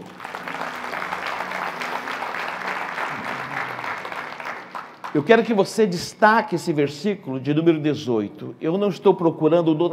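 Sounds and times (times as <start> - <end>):
large crowd applauding: 0.0 - 5.6
speech: 5.2 - 9.9.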